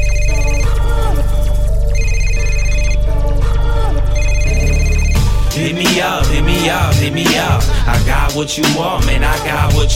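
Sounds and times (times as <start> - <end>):
telephone ringing: 0.0 - 1.0, 1.9 - 3.1, 4.2 - 5.4
loud bass-heavy music beat: 0.0 - 9.9
speech: 7.1 - 9.9.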